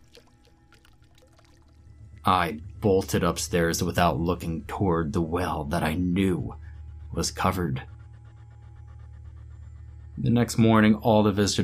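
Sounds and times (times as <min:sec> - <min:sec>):
water dripping and trickling: 0:00.0 - 0:02.2
low rumble: 0:00.0 - 0:11.6
speech: 0:02.3 - 0:07.9, 0:10.2 - 0:11.6.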